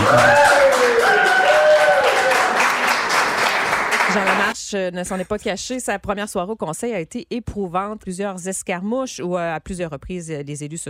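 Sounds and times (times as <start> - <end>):
voices booing at a city council meeting: 0.0 - 2.6
crowd applauding at a city council meeting: 0.0 - 4.6
speech: 4.7 - 10.8.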